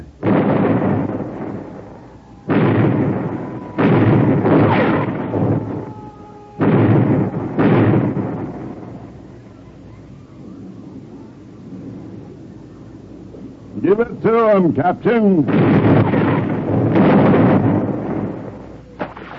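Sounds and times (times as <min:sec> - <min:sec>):
ship's cannons firing a broadside: 0:00.0 - 0:09.4, 0:13.8 - 0:19.3
speech: 0:14.2 - 0:16.2.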